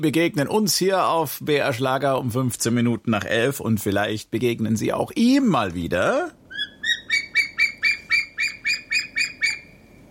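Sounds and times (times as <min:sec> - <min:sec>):
speech: 0:00.0 - 0:06.4
bird call with bright harsh notes: 0:06.5 - 0:10.1.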